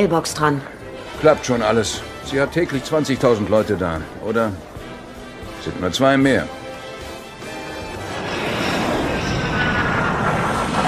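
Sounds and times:
speech: 0:00.0 - 0:04.7, 0:05.6 - 0:06.6
airplane landing in Costa Rica: 0:07.0 - 0:10.8.

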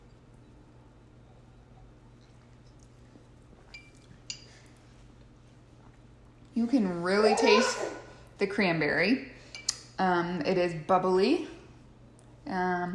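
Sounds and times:
steady low hum: 0:00.0 - 0:12.9
wine glasses of bubbly cranberry Secco clinking in a toast in a kitchen: 0:03.7 - 0:04.6
speech: 0:06.6 - 0:09.3, 0:10.0 - 0:11.6, 0:12.5 - 0:12.9.

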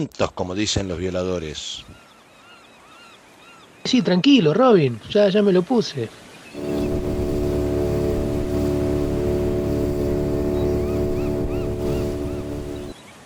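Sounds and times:
speech: 0:00.0 - 0:02.0, 0:03.9 - 0:06.7
approaching motorboat horn long deep blast: 0:06.6 - 0:13.0
low rumbling motorboat engine: 0:06.6 - 0:13.0.

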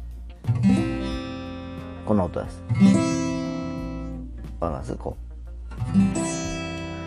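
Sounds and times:
G chord plucked with fingers on an acoustic guitar with slight fret buzz: 0:00.0 - 0:07.0
speech: 0:02.1 - 0:03.2, 0:04.6 - 0:05.2.

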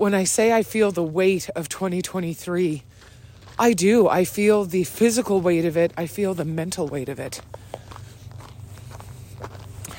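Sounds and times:
speech: 0:00.0 - 0:03.0, 0:03.6 - 0:07.7
low constant rumble: 0:00.0 - 0:09.9
soft footsteps of people approaching: 0:02.8 - 0:09.9.

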